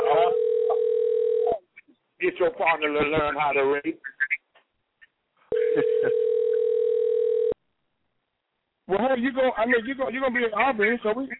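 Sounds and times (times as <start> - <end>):
telephone dial tone while placing a call: 0.2 - 1.6, 5.5 - 7.6
speech: 2.3 - 4.2, 8.9 - 11.3.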